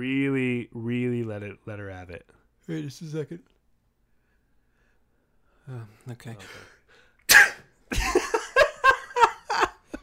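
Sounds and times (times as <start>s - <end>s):
speech: 0.0s - 3.6s, 5.7s - 6.7s
person fake sneezing: 7.3s - 7.8s
person laughing: 7.9s - 10.0s.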